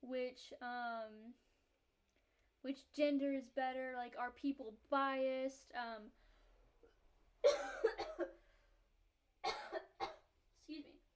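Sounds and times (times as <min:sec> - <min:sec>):
speech: 0:00.0 - 0:01.5, 0:02.6 - 0:06.2
person coughing with ice stuck in the throat: 0:07.4 - 0:08.4, 0:09.4 - 0:10.2.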